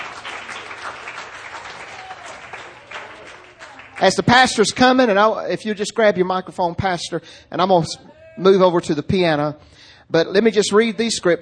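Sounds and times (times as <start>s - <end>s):
audience applause: 0.0s - 4.8s
speech: 4.0s - 11.4s.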